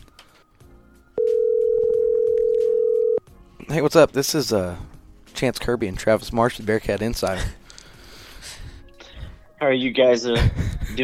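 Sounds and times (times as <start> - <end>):
telephone dial tone while placing a call: 1.2 - 3.2
speech: 3.7 - 7.6, 9.6 - 11.0
laughter: 10.3 - 11.0.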